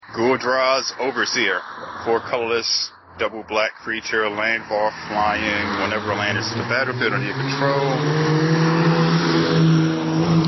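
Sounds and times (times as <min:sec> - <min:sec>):
speech: 0:00.2 - 0:08.6
motorcycle engine revving: 0:04.9 - 0:10.4.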